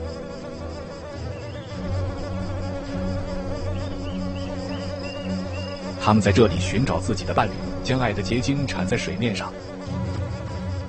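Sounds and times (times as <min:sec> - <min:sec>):
swarm of mosquitoes buzzing over water: 0:00.0 - 0:10.8
speech: 0:06.0 - 0:09.7.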